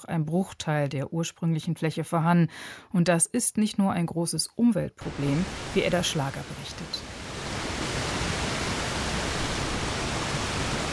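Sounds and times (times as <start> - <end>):
speech: 0.0 - 7.1
water rushing through a dam weir: 5.0 - 10.9.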